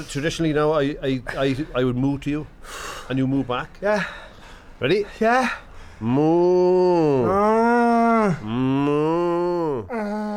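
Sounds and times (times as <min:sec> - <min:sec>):
speech: 0:00.0 - 0:07.6, 0:08.2 - 0:08.8
people imitating cow moos: 0:07.0 - 0:10.3.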